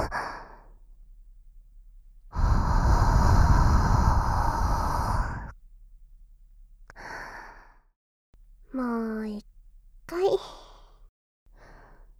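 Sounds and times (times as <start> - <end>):
deep breath in and out: 0.0 - 1.2, 2.3 - 5.6, 6.9 - 7.9, 10.4 - 12.1.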